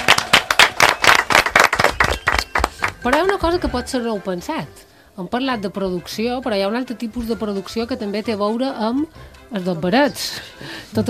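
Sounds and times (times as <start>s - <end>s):
loud applause from a group: 0.0s - 3.1s
speech: 3.0s - 11.0s.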